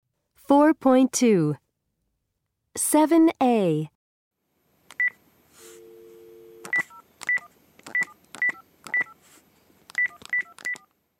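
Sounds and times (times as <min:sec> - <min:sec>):
speech: 0:00.5 - 0:01.6, 0:02.8 - 0:04.0
steady telephone dial tone: 0:05.6 - 0:07.0
telephone keypad dialing tones: 0:06.6 - 0:09.2, 0:10.0 - 0:10.9.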